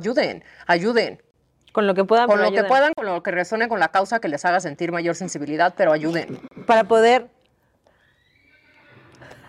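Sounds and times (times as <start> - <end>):
speech: 0.0 - 7.4
horse whinnying: 6.1 - 7.0, 7.9 - 9.4.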